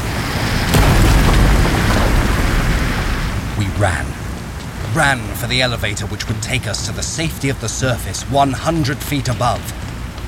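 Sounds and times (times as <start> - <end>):
sea water roaring through mine tunnels: 0.0 - 10.2
sharp crash: 0.5 - 3.6
speech: 3.8 - 4.2, 5.0 - 9.9.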